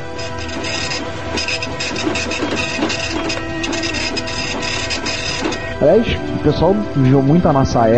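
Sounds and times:
dot matrix printer printing: 0.0 - 6.2
speech: 5.8 - 7.9.

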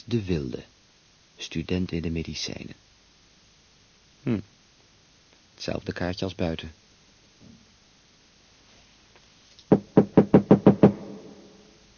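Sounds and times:
speech: 0.1 - 0.8, 1.4 - 2.9, 4.2 - 4.6, 5.6 - 6.8
knocking on a door with hollow resonant echo: 9.7 - 11.2.

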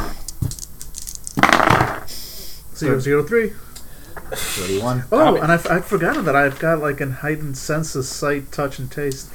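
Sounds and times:
dice clattering across a hard table for awareness rolls: 0.0 - 2.2, 5.4 - 7.1
speech: 2.8 - 3.7, 4.3 - 9.3.

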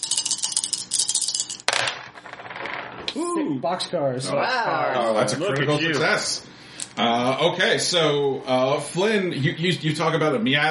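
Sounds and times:
four dice rattling in a hand or cup: 0.0 - 3.2
speech: 3.1 - 10.6.

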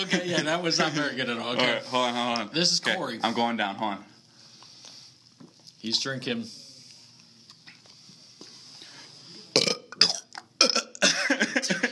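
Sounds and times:
speech: 0.0 - 4.1, 5.8 - 6.6
loud voiced burps: 9.5 - 11.1.

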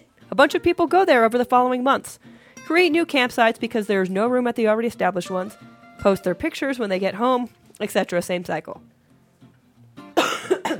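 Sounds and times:
speech: 0.3 - 8.9
person coughing: 10.2 - 10.7.

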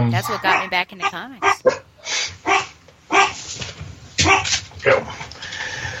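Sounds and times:
speech: 0.0 - 2.4, 4.8 - 5.2
dogs barking: 0.2 - 3.4, 4.2 - 5.3.

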